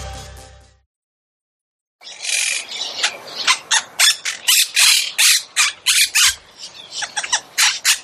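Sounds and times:
monk parakeet squawking: 0:02.0 - 0:08.0.

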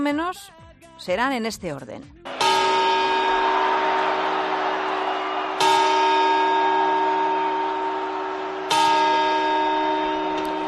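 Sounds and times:
speech: 0:00.0 - 0:02.3
clock tower bell quarter chimes before midnight bells: 0:02.3 - 0:04.6, 0:05.5 - 0:10.6.

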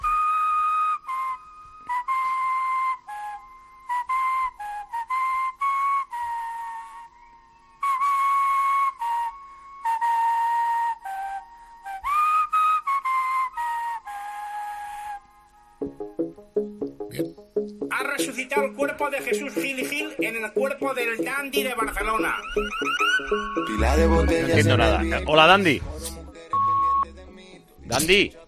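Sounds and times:
person whistling a bright wandering melody: 0:00.0 - 0:15.2, 0:18.0 - 0:27.2
plucked musical notes: 0:15.8 - 0:27.4
speech: 0:18.4 - 0:26.2, 0:28.0 - 0:28.4.

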